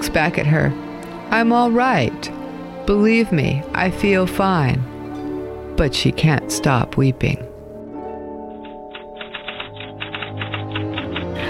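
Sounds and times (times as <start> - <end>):
speech: 0.1 - 4.9, 5.8 - 7.5
typewriter keys clacking: 8.5 - 11.4.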